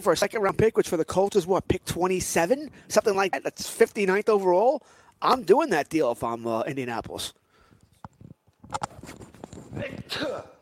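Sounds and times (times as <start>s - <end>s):
speech: 0.0s - 7.4s, 8.7s - 9.0s, 9.8s - 10.5s
sneeze: 10.0s - 10.6s.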